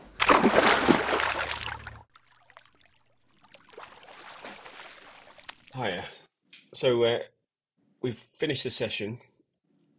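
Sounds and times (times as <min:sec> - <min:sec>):
person swimming lengths in a pool lane splashing: 0:00.0 - 0:05.8
water dripping and sloshing in a pool: 0:00.0 - 0:05.8
speech: 0:05.8 - 0:07.3, 0:08.0 - 0:09.3.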